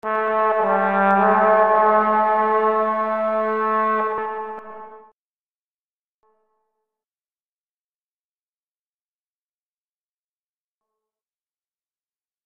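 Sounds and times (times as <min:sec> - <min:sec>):
short deep horn fanfare: 0:00.0 - 0:05.1.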